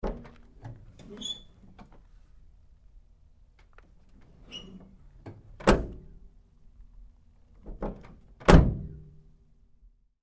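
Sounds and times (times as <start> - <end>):
GMC Savana truck side door closing: 5.4 - 6.1, 7.7 - 9.0.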